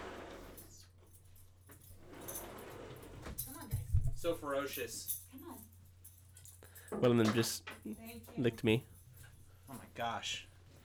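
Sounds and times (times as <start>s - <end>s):
dog collar tags jingling: 3.4s - 10.0s
speech: 4.2s - 5.2s, 7.0s - 8.9s, 9.7s - 10.5s.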